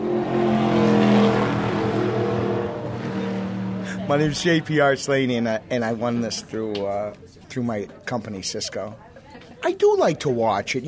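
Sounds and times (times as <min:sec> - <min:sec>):
stock car engine roaring on the track at New Hampshire: 0:00.0 - 0:04.7
speech: 0:04.1 - 0:10.8.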